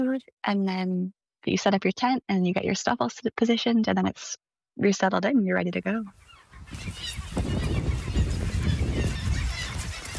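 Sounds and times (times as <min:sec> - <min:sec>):
speech: 0:00.1 - 0:07.6
hundreds of thousands of birds honking on an island: 0:06.1 - 0:10.1.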